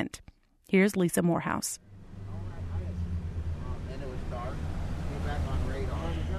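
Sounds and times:
speech: 0:00.0 - 0:01.9
fishing boat engine rumbling pulling out of a private dock in Isleton: 0:01.8 - 0:06.3.

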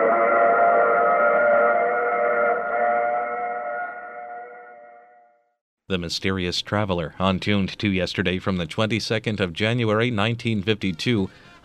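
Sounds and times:
passenger train whistle: 0:00.0 - 0:05.5
speech: 0:05.9 - 0:11.6.

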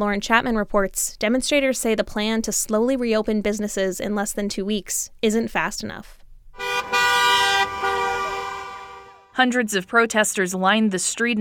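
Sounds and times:
speech: 0:00.0 - 0:06.2, 0:09.4 - 0:11.3
car horns honking from supporters driving past a protest: 0:06.6 - 0:09.3.

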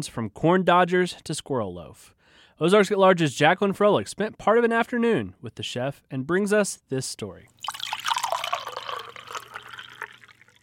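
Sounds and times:
speech: 0:00.0 - 0:07.8
homemade sweet tea pouring from a jar into two mugs: 0:07.6 - 0:10.6.

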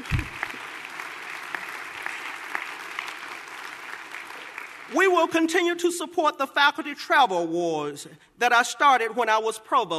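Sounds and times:
room full of people applauding: 0:00.0 - 0:05.1
speech: 0:04.9 - 0:09.9.

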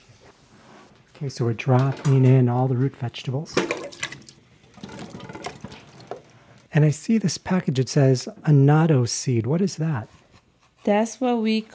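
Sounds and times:
speech: 0:01.2 - 0:03.7, 0:06.8 - 0:10.2, 0:10.8 - 0:11.7
water starting to boil in a pot in a kitchen: 0:03.6 - 0:06.4.

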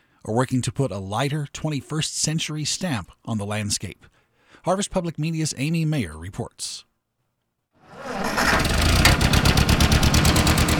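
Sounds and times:
speech: 0:00.2 - 0:06.9
1947 Ford 2N tractor engine running: 0:08.1 - 0:10.7.

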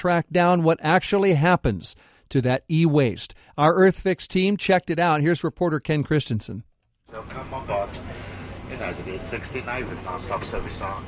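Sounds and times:
speech: 0:00.0 - 0:08.1, 0:08.8 - 0:11.0
airplane cabin drone in flight: 0:07.1 - 0:11.0.

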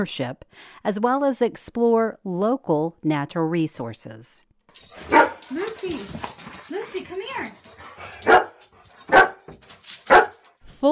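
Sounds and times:
speech: 0:00.0 - 0:08.4
dog barking: 0:05.0 - 0:05.6, 0:07.8 - 0:10.5.

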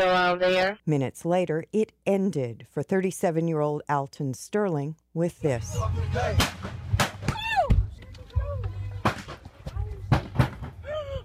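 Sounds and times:
speech: 0:00.0 - 0:06.8
sharp gunshots fired by police officers: 0:06.4 - 0:07.4, 0:09.0 - 0:09.4
raised shouting voices: 0:07.2 - 0:08.9, 0:10.8 - 0:11.2.

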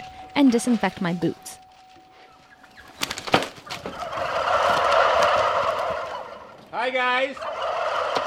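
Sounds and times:
speech: 0:00.4 - 0:01.6, 0:06.9 - 0:07.5
flock of turkeys gobbling: 0:02.1 - 0:08.2.

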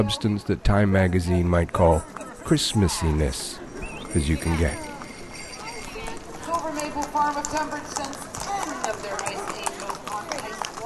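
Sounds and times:
speech: 0:00.0 - 0:04.9, 0:07.5 - 0:08.2, 0:08.9 - 0:09.7
chattering outdoor crowd: 0:00.0 - 0:10.8
horse hooves clip-clopping on pavement in a parade: 0:01.3 - 0:02.4, 0:03.8 - 0:10.8.

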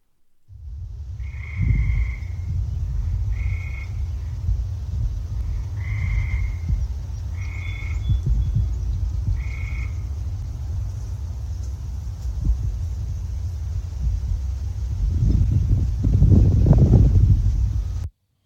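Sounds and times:
low constant outdoor rumble: 0:00.0 - 0:18.1
tree frog high-pitched trill: 0:01.1 - 0:04.5, 0:05.4 - 0:10.4.

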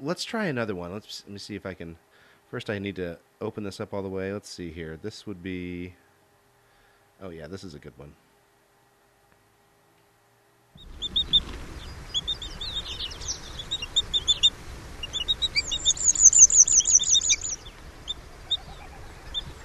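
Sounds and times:
speech: 0:00.0 - 0:06.0, 0:07.2 - 0:08.2
Arctic terns calling: 0:10.8 - 0:19.6
steady low wind noise: 0:10.8 - 0:19.6.

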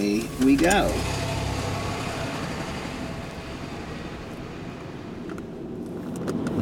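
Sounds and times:
commuter's car engine and road noise in rush-hour traffic: 0:00.0 - 0:06.6
speech: 0:00.4 - 0:01.2.

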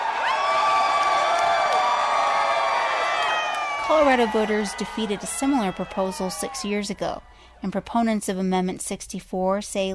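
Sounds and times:
crowd shouts and whoops in a bar in Denver Colorado: 0:00.0 - 0:07.3
crowd of marijuana legalization supporters cheering in a bar in Denver Colorado: 0:00.0 - 0:08.2
speech: 0:03.9 - 0:09.9.

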